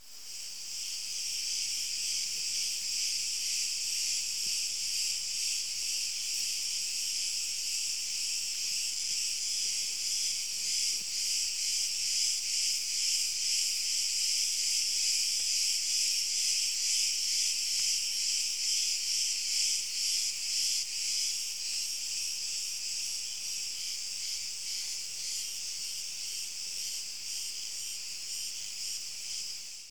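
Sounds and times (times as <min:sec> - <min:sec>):
crickets: 0:00.0 - 0:29.8.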